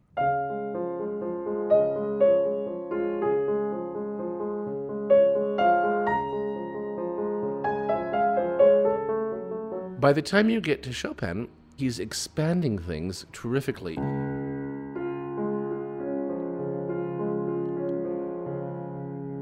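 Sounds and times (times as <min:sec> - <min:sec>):
solo piano romantic nocturne melody over an Alberti bass: 0:00.0 - 0:10.0, 0:14.0 - 0:19.4
speech: 0:10.0 - 0:14.2.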